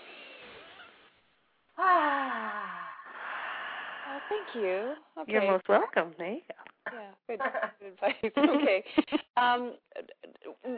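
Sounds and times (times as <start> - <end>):
long voiced sigh-like exhale: 1.8 - 4.9
people taking a deep breath together: 1.8 - 5.1
speech: 4.3 - 10.7.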